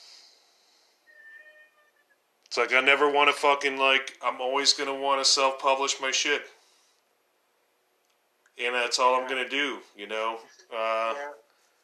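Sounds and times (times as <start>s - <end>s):
cat meowing with a whiny tone: 1.1s - 2.1s
speech: 2.6s - 6.6s, 8.6s - 11.4s.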